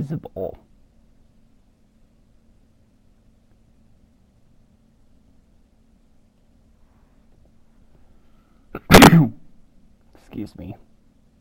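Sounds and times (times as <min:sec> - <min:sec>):
speech: 0:00.0 - 0:00.7, 0:10.3 - 0:10.9
person sneezing: 0:08.7 - 0:09.5.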